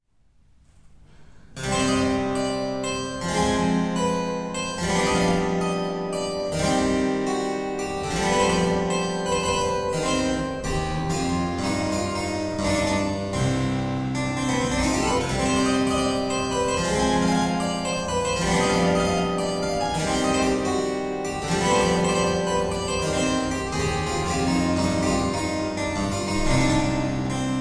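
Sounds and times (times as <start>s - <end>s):
keyboard sonata in D minor: 1.6s - 27.6s.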